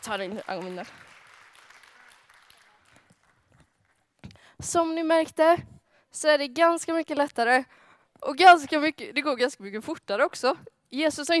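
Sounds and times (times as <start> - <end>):
speech: 0.0 - 1.2, 4.6 - 11.3
crowd applauding: 0.0 - 4.1.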